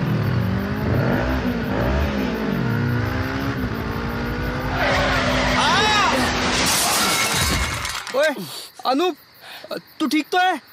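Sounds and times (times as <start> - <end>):
motorbike engines revving in a race: 0.0 - 7.0
tire skid: 4.5 - 8.1
glass shattering: 4.8 - 8.3
speech: 8.4 - 10.7.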